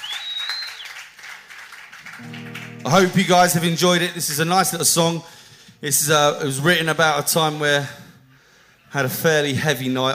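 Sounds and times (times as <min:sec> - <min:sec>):
shrill whistle from the audience: 0:00.0 - 0:01.0
audience applause at a live music show: 0:00.0 - 0:03.2
audience cheering at a live music show: 0:00.0 - 0:04.3
speech: 0:02.2 - 0:08.0, 0:08.9 - 0:10.1.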